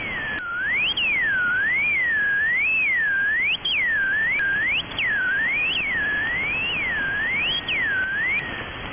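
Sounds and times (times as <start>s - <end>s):
mysterious radio oscillation on 28002 kHz from the Caribbean area: 0.0s - 8.9s.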